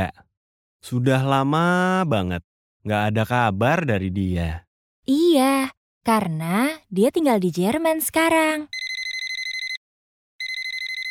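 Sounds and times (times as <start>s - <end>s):
speech: 0.8s - 8.8s
telephone ringing with rapid trilling pulses: 8.7s - 9.8s, 10.4s - 11.0s.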